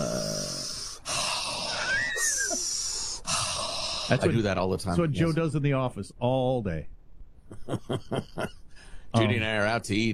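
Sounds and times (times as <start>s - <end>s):
deep mindful breathing in and out with a faint whistling wheeze: 0.0s - 4.2s, 8.6s - 9.2s
speech: 4.1s - 7.0s, 7.7s - 10.1s
laughter: 7.5s - 8.6s.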